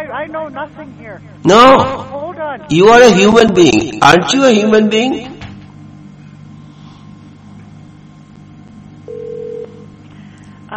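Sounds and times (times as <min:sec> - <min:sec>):
low hum: 0:00.0 - 0:10.7
speech: 0:00.1 - 0:05.4
electronic telephone ring tone heard down the line: 0:09.1 - 0:09.9.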